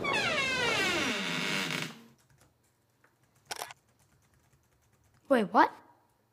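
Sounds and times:
museum door creaking open with a downward squeal: 0:00.0 - 0:02.1
speech: 0:05.3 - 0:05.8.

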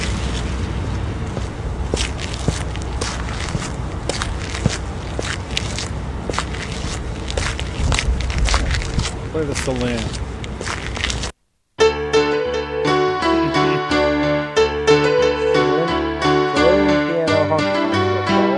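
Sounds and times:
constant noisy background: 0:00.0 - 0:11.3, 0:12.8 - 0:18.5
crunchy footsteps and scrapes: 0:00.0 - 0:11.4
speech: 0:09.4 - 0:10.2.

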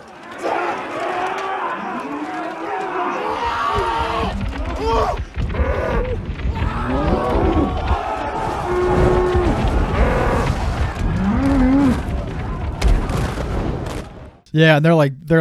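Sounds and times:
people shouting: 0:00.0 - 0:13.2
crowd roaring: 0:00.0 - 0:14.4
bulls bellowing while running through town: 0:03.2 - 0:12.8
booming bangs: 0:03.2 - 0:14.5
speech: 0:14.5 - 0:15.3.

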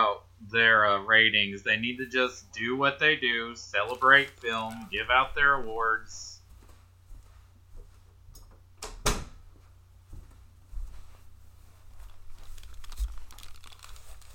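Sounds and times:
speech: 0:00.5 - 0:06.4
door pushed shut with a sharp thud: 0:08.8 - 0:09.4.

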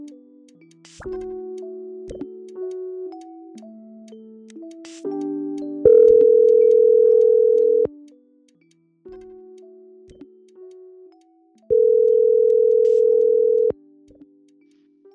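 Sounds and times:
telephone line tones while a call is being placed: 0:05.9 - 0:07.9, 0:11.7 - 0:13.7.

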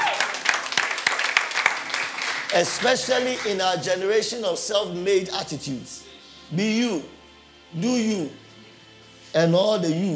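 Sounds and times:
crowd applauding: 0:00.0 - 0:03.8
speech: 0:02.5 - 0:08.4, 0:09.3 - 0:10.1.

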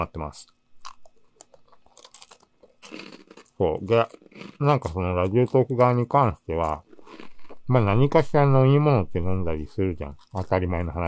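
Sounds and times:
speech: 0:00.0 - 0:00.6, 0:02.9 - 0:06.9, 0:07.7 - 0:11.0
crunchy chewing: 0:00.4 - 0:08.0, 0:10.0 - 0:11.0.

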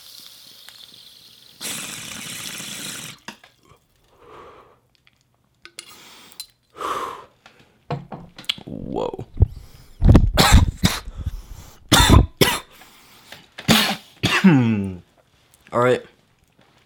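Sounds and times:
wheezy rasping breath: 0:05.9 - 0:07.5, 0:09.4 - 0:10.0, 0:10.8 - 0:11.9
person coughing in harsh hacking bursts: 0:10.3 - 0:12.7, 0:13.7 - 0:14.8.

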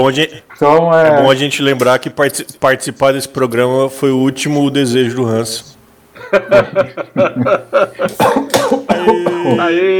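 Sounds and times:
speech: 0:00.0 - 0:09.9
laughter: 0:06.2 - 0:09.9
person coughing: 0:08.1 - 0:09.7.

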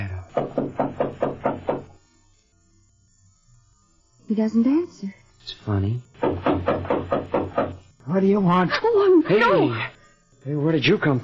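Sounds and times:
knocking on a wooden door: 0:00.3 - 0:01.9, 0:06.2 - 0:07.8
speech: 0:04.3 - 0:06.8, 0:08.1 - 0:11.2.

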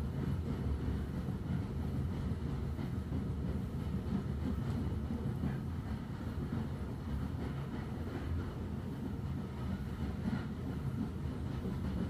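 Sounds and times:
train pulling away past platform end: 0:00.0 - 0:12.0.

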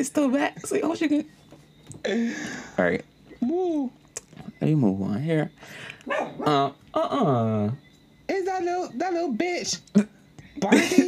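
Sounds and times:
speech: 0:00.0 - 0:04.0, 0:04.6 - 0:11.0
dog whining falling yelp: 0:06.0 - 0:06.6
dog barking: 0:06.1 - 0:06.5.

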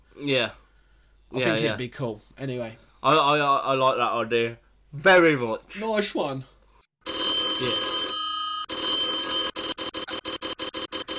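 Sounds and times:
speech: 0:00.2 - 0:00.6, 0:01.3 - 0:06.5, 0:07.6 - 0:07.8
loud telephone bell ringing: 0:07.0 - 0:11.1.

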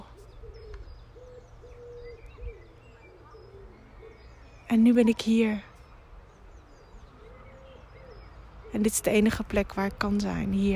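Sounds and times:
dove cooing outdoors on a sunny day: 0:00.0 - 0:04.3, 0:07.1 - 0:08.3
speech: 0:04.7 - 0:05.7, 0:08.8 - 0:10.7.

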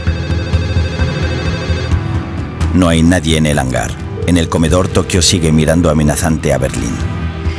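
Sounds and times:
outgoing telephone call ringing unanswered: 0:00.0 - 0:02.1
speech: 0:02.8 - 0:07.1.

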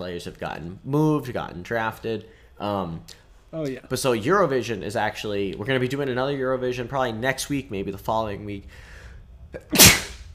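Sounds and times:
speech: 0:00.0 - 0:08.9, 0:09.5 - 0:10.0
person sneezing: 0:09.6 - 0:10.2.

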